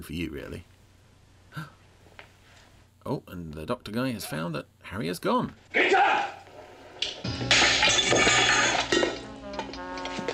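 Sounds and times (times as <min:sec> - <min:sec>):
speech: 0:00.0 - 0:00.7, 0:01.5 - 0:01.8, 0:03.0 - 0:06.4
crumbling clattering plaster debris: 0:06.6 - 0:10.3
plaster cast smashed against a pole: 0:07.0 - 0:10.3.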